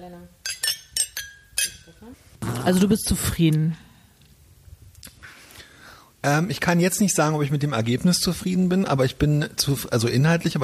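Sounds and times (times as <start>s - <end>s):
glasses clinking in a toast: 0.4s - 2.0s
speech: 2.0s - 3.8s, 6.2s - 10.6s.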